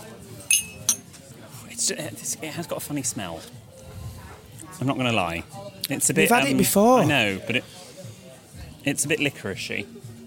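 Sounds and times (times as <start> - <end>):
glass tumblers clinking in a toast among friends in Burnley: 0.5 - 1.0
speech: 1.9 - 3.7, 4.8 - 7.8, 8.8 - 10.0.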